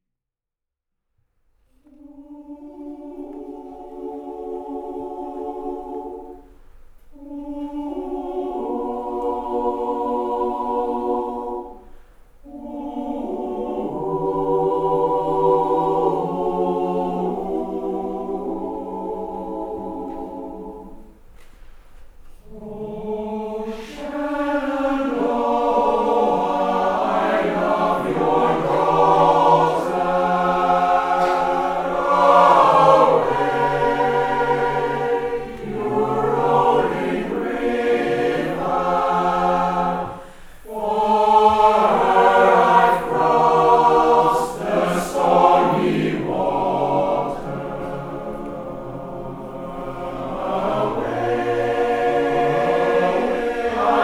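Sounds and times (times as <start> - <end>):
SATB choir singing a cappella: 1.8 - 54.0.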